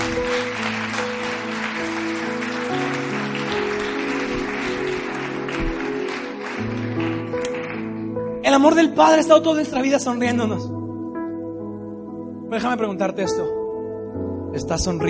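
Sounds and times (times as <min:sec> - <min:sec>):
large audience applause: 0:00.0 - 0:08.0
sustained keyboard chords: 0:00.0 - 0:15.0
speech: 0:08.6 - 0:10.7, 0:12.5 - 0:13.6, 0:14.6 - 0:15.0.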